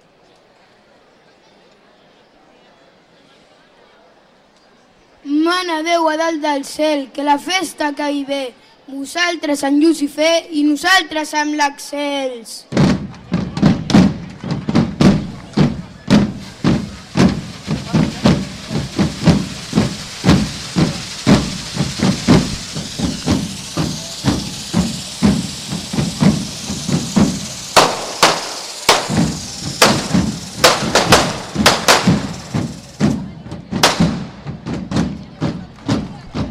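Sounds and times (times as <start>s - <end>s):
speech: 5.5s - 12.8s
firecrackers and fireworks going off at the final lighting of a devils' group fire run: 12.7s - 36.4s
fireworks hissing spray: 13.9s - 34.4s.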